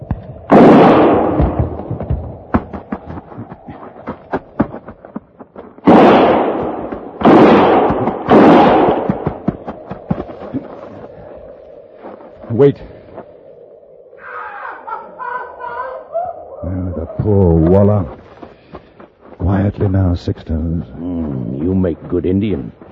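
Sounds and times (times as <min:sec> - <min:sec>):
gunfire bursts: 0:00.4 - 0:02.6, 0:05.8 - 0:10.0
speech: 0:12.6 - 0:13.0, 0:17.2 - 0:18.2, 0:19.8 - 0:22.8
laughter: 0:14.4 - 0:17.4.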